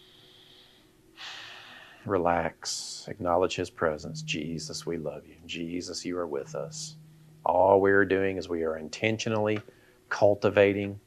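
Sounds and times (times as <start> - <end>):
deep breath drawn during a guided prayer and relaxation exercise: 0.0 - 2.1
speech: 2.0 - 11.0.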